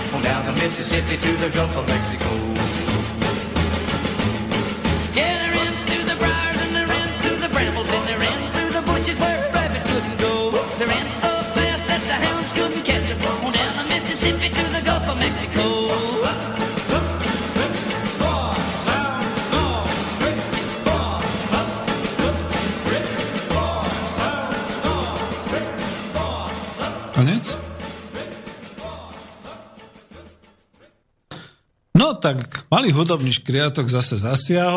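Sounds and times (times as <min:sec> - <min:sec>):
man singing: 0:00.0 - 0:02.8, 0:05.2 - 0:29.8
folk country song: 0:00.0 - 0:27.4
speech: 0:00.3 - 0:03.2, 0:32.2 - 0:34.7.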